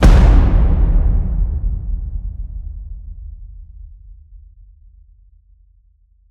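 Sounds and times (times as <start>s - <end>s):
epic cinematic drum hits: 0.0s - 3.9s.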